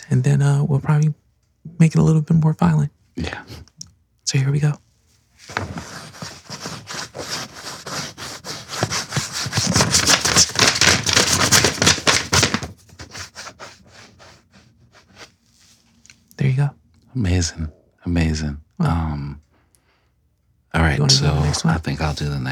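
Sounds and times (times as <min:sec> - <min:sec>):
speech: 0:00.1 - 0:03.7, 0:04.3 - 0:04.8, 0:17.2 - 0:19.4, 0:20.8 - 0:22.5
fingernail scratching against a sheet of paper: 0:05.5 - 0:15.3.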